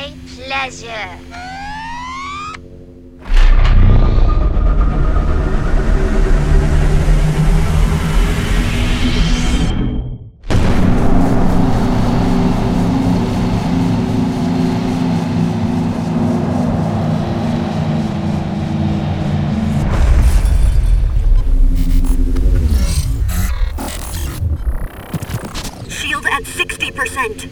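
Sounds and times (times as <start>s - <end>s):
speech: 0.5s - 1.6s
low throbbing hum: 1.2s - 25.9s.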